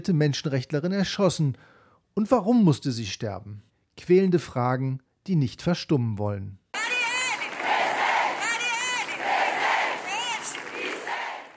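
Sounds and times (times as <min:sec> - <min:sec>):
speech: 0:00.0 - 0:06.6
protest crowd chanting in the street: 0:06.8 - 0:11.5.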